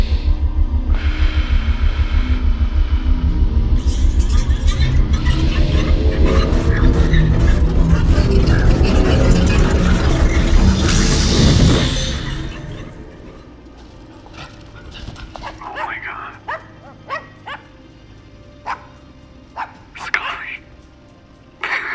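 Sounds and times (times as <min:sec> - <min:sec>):
loud rushing burst of noise: 0:00.0 - 0:13.6
dog barking in a room: 0:14.4 - 0:17.7, 0:18.6 - 0:19.0, 0:19.6 - 0:19.8.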